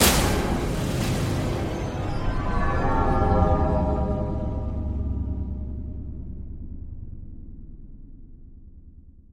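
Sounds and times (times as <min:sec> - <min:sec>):
eerie horror scene ambience: 0:00.0 - 0:09.3.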